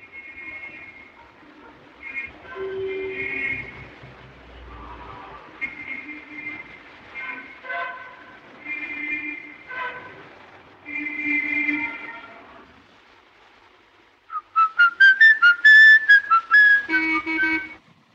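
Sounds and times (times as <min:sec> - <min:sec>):
long steady horn-like tones: 0:00.0 - 0:12.7, 0:16.1 - 0:17.8
man whistling a brisk classical tune: 0:14.3 - 0:17.8.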